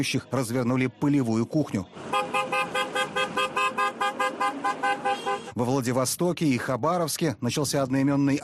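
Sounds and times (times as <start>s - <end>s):
speech: 0.0s - 2.4s, 5.6s - 8.4s
car horn honking in short toots: 2.0s - 5.6s.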